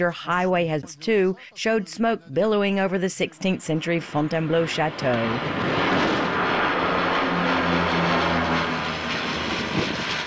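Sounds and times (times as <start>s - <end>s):
speech: 0.0s - 6.1s
Canadair firefighting plane propeller engine drone fighting a forest fire in Fontainebleau France: 3.5s - 10.2s.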